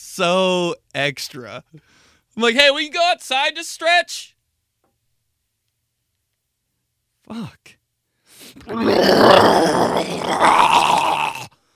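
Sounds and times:
speech: 0:00.0 - 0:04.4, 0:07.3 - 0:07.8, 0:08.4 - 0:11.5
very large dog groaning and growling in a dining room: 0:08.6 - 0:11.5.

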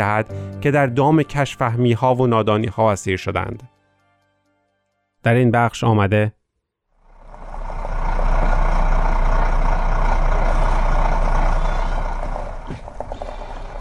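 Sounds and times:
speech: 0:00.0 - 0:03.8, 0:05.2 - 0:06.4
heavy truck engine roaring on a rough mountain road: 0:07.0 - 0:13.8
brief clunk: 0:11.5 - 0:13.8.

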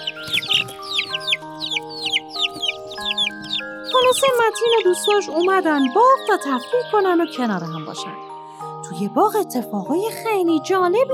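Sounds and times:
chickens clucking in a garden: 0:00.0 - 0:06.0
soft sustained musical tone: 0:00.0 - 0:09.0
speech: 0:04.2 - 0:08.3, 0:09.0 - 0:11.1.

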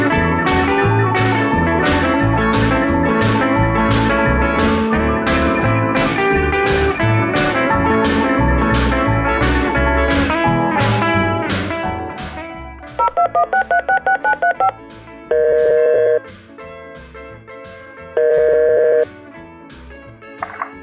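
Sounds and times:
music: 0:00.0 - 0:20.8
touch-tone beeps from a mobile phone keypad dialing a number: 0:13.0 - 0:16.2, 0:18.2 - 0:19.0.

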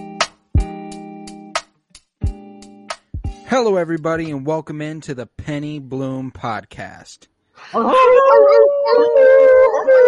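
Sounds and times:
speech: 0:03.5 - 0:10.0
single loud drawn-out wolf howl: 0:07.8 - 0:10.0.

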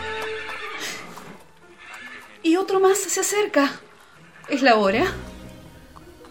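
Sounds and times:
horse neighing: 0:00.0 - 0:02.6, 0:04.0 - 0:05.2
horse hooves clopping: 0:00.0 - 0:06.2
speech: 0:02.5 - 0:03.9, 0:04.5 - 0:05.3.

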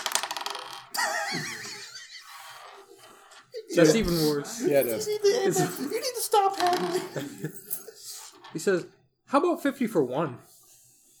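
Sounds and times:
dice clattering and tumbling across a hard tabletop: 0:00.0 - 0:01.0, 0:06.5 - 0:07.2
laughter: 0:00.9 - 0:08.4
speech: 0:03.8 - 0:07.8, 0:08.5 - 0:10.5.

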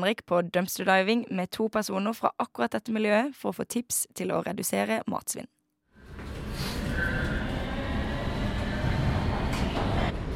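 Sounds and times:
speech: 0:00.0 - 0:05.6
faint higher whines and squeaks: 0:06.0 - 0:10.3
rumble and rattle of a moving train interior: 0:06.0 - 0:10.3.

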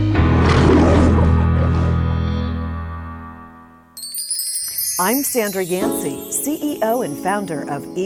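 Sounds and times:
lion roar with deep rumbling growl: 0:00.1 - 0:02.6
short bright chime: 0:04.0 - 0:07.6
speech: 0:05.0 - 0:08.0.

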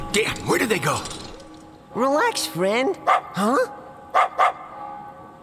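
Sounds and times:
speech: 0:00.1 - 0:01.2, 0:02.0 - 0:04.4
dog barking: 0:03.1 - 0:03.4, 0:04.1 - 0:04.7.

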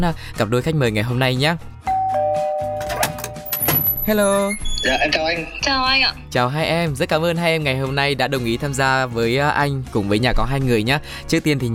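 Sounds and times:
speech: 0:00.0 - 0:01.7, 0:04.1 - 0:11.7
doorbell chiming: 0:01.9 - 0:05.1.

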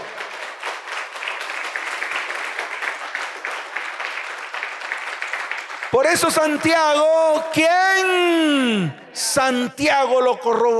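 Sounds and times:
audience applauding: 0:00.0 - 0:07.1
speech: 0:05.9 - 0:10.7.

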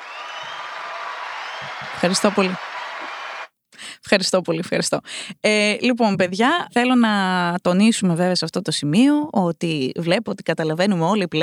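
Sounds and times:
crowd applause: 0:00.0 - 0:03.5
scattered cheers: 0:00.0 - 0:03.5
speech: 0:01.6 - 0:02.7, 0:04.1 - 0:11.4.

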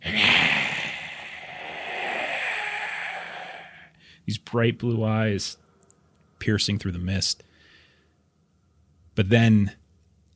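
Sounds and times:
voice imitating a creature's breathy hiss-roar: 0:00.0 - 0:03.9
speech: 0:04.3 - 0:05.6, 0:06.4 - 0:07.5, 0:09.2 - 0:09.8.

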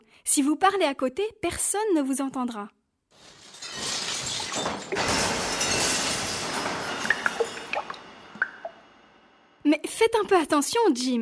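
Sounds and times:
speech: 0:00.3 - 0:02.8, 0:09.7 - 0:11.2
glass clinking: 0:03.3 - 0:09.0
water from a glass splashing and spilling: 0:06.6 - 0:08.9
water dripping: 0:07.0 - 0:08.9.

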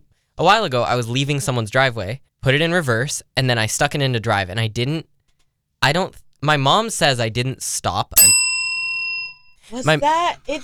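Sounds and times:
speech: 0:00.4 - 0:05.1, 0:05.8 - 0:08.4, 0:09.7 - 0:10.6
tabletop bell ringing: 0:08.2 - 0:09.6.

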